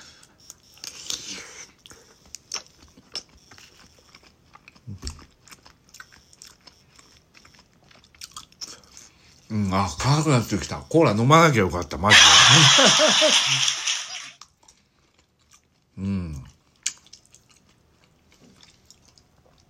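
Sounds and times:
person biting, crunching and chewing spicy food: 0.0 - 10.2, 14.4 - 19.6
speech: 9.5 - 13.8
laughter: 12.1 - 14.3.

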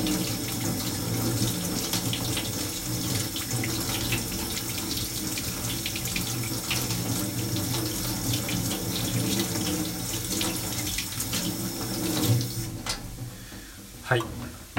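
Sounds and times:
tap water running into a sink while potatoes are washed: 0.0 - 13.7
speech: 14.1 - 14.3.

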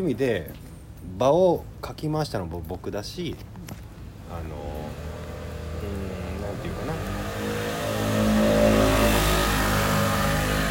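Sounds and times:
speech: 0.0 - 3.5, 4.3 - 5.0, 5.8 - 7.2
motorcycle passing by with revving engine: 4.5 - 10.6.

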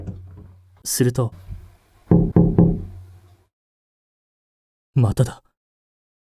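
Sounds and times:
speech: 0.8 - 1.5, 5.0 - 5.5
knocking on a wooden bedroom door: 2.1 - 3.0.

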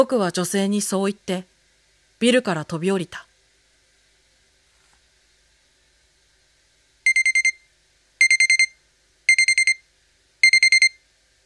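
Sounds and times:
speech: 0.0 - 1.5, 2.2 - 3.3
alarm clock beeping with rapid electronic tones: 7.1 - 7.6, 8.2 - 9.8, 10.4 - 11.0.

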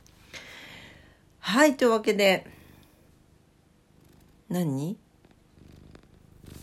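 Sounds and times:
speech: 1.5 - 2.6, 4.5 - 5.0
cat purring: 2.5 - 6.6.

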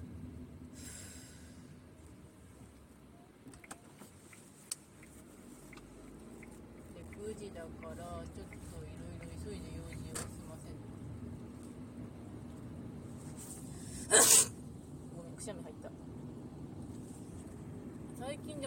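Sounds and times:
steady low rumble: 0.0 - 18.6
speech: 7.3 - 10.4, 15.4 - 16.4, 18.2 - 18.6
single sharp sneeze: 13.9 - 14.6.

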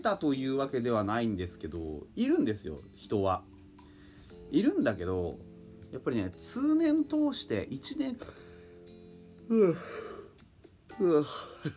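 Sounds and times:
speech: 0.0 - 3.5, 4.5 - 8.4, 9.5 - 10.0, 11.0 - 11.7
man yawning into a breathy groan: 9.5 - 10.3.

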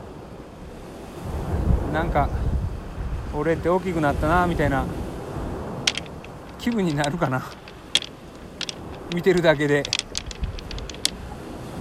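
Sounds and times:
gusty wind buffeting the microphone: 1.0 - 11.7
speech: 2.0 - 2.5, 3.3 - 5.0, 6.6 - 7.6, 9.1 - 10.0
ocean waves breaking on shore: 4.0 - 11.7.

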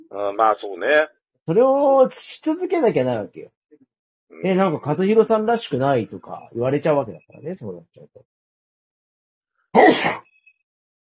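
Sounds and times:
speech: 0.1 - 3.6, 4.3 - 8.3, 9.8 - 10.3
single loud sharp sneeze: 9.8 - 10.2.

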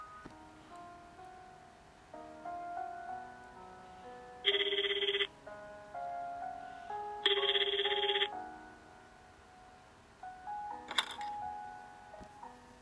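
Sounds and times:
soft music: 0.0 - 12.8
landline telephone ringing in living room: 4.4 - 5.3, 7.2 - 8.4.

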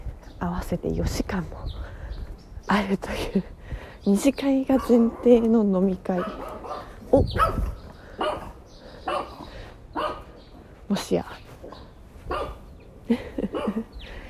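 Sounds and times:
outdoor ambience hum: 0.0 - 14.2
speech: 0.4 - 2.0, 2.6 - 8.4, 10.9 - 11.4
dog barking behind a fence: 6.2 - 10.3, 12.3 - 12.6, 13.6 - 13.8.

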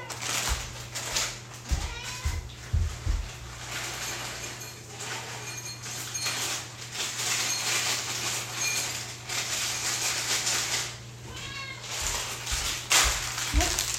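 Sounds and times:
rustling: 0.0 - 13.9
steady low electrical hum: 0.0 - 13.9
cat meowing for food: 1.7 - 2.6, 11.2 - 12.3
light clinks: 3.7 - 9.1.

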